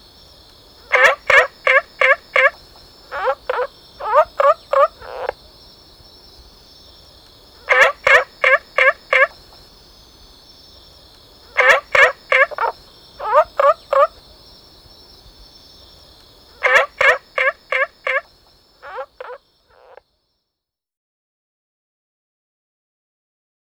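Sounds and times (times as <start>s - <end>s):
Olive frog Rana adenopleura gobbling calls: 0.6s - 6.6s, 7.4s - 10.4s, 11.4s - 14.5s, 16.4s - 20.0s.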